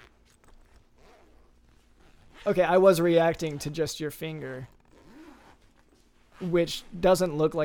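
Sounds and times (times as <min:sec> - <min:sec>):
pants zippers being unzipped: 0:00.0 - 0:02.6, 0:04.6 - 0:06.5
speech: 0:02.4 - 0:04.8, 0:06.4 - 0:07.6.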